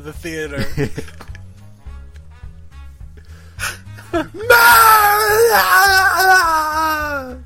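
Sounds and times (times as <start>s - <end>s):
person screaming at the top of the lungs for a movie take: 4.2s - 7.4s.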